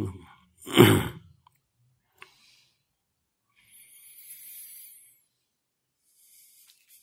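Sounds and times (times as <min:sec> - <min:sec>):
forceful deep breaths in and out: 0:02.2 - 0:07.0.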